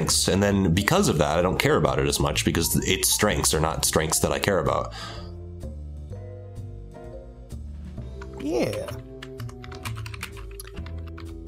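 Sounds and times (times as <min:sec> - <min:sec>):
speech: 0:00.1 - 0:05.2, 0:08.4 - 0:09.0
computer keyboard typing: 0:08.0 - 0:11.4.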